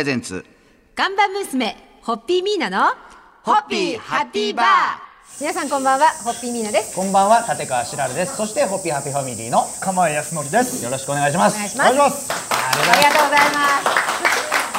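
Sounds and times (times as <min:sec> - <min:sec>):
speech: 0:00.0 - 0:14.3
cicadas buzzing outdoors: 0:03.5 - 0:14.7.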